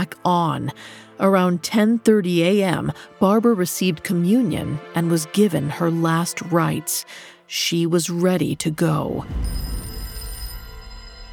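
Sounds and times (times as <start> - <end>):
speech: 0.0 - 9.7
telephone ringing with a high-pitched trill: 9.4 - 11.3.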